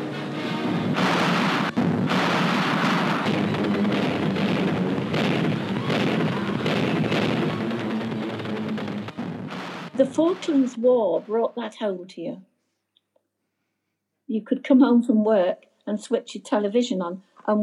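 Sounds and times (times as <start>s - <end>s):
anti-aircraft gunfire barrage from gun crews in wartime London: 1.0s - 11.3s
speech: 10.2s - 12.5s, 14.3s - 17.6s.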